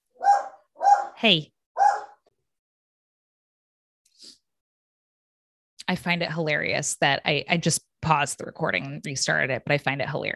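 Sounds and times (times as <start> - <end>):
dog giving a short sharp bark: 0.2 - 1.2, 1.8 - 2.2
speech: 1.2 - 1.5, 5.9 - 10.3.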